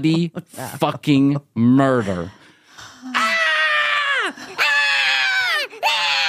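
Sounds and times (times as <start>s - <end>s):
speech: 0.0s - 2.4s
adult voice imitating one-year-old girl screaming: 3.1s - 6.2s.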